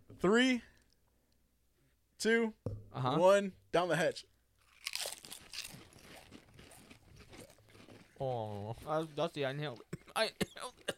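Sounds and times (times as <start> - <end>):
speech: 0.2 - 0.7, 2.2 - 4.3, 8.2 - 10.9
very hot crispy chip crunching against the microphone: 4.6 - 9.9.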